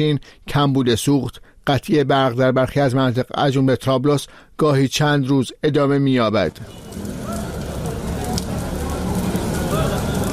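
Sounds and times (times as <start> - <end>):
speech: 0.0 - 7.2
indistinct voices murmuring: 6.5 - 10.3
tires set on fire by protesters crackling and roaring: 6.5 - 10.3.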